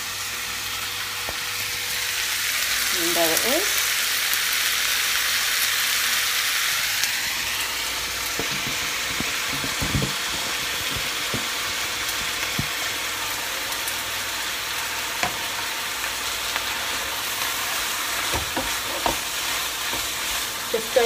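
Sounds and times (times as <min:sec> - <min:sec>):
minced meat frying and sizzling in a pan: 0:00.0 - 0:21.0
speech: 0:03.2 - 0:03.8
utensil scraping and clicking against the pan while stirring: 0:08.0 - 0:12.7, 0:17.9 - 0:20.5.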